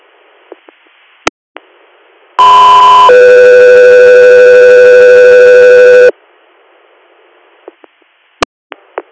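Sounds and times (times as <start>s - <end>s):
loud radio dispatch alert tones: 2.4s - 6.1s.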